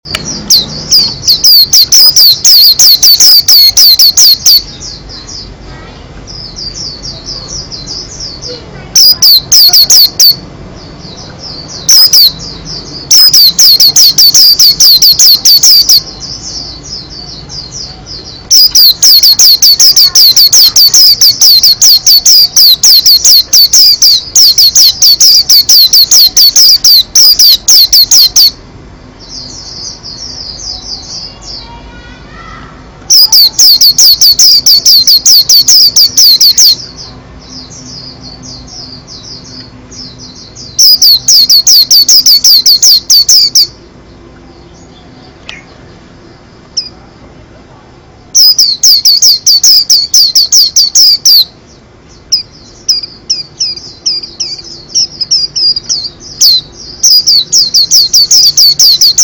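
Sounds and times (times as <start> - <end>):
pleci kacamata white-eye singing: 0.0 - 47.2, 48.3 - 59.2.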